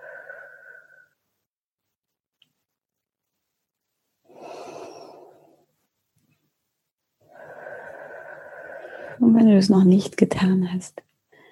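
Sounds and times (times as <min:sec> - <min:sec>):
slow deep breathing in and out: 0:00.0 - 0:01.2, 0:04.2 - 0:05.7, 0:07.2 - 0:09.2
speech: 0:09.2 - 0:11.1.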